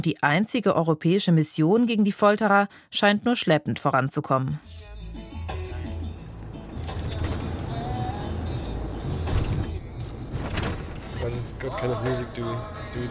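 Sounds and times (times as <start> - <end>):
speech: 0.0 - 4.9, 11.3 - 13.1
road noise: 5.7 - 13.1
low rumble of a car driving heard from inside the cabin: 5.9 - 13.1.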